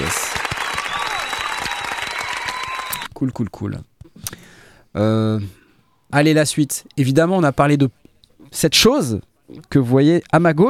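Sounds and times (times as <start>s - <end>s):
crowd applause: 0.0s - 3.1s
speech: 3.2s - 3.9s, 4.9s - 10.6s.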